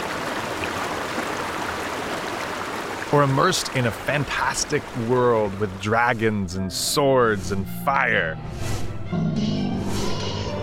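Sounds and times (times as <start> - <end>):
rushing river water: 0.0 - 7.6
speech: 3.1 - 9.6.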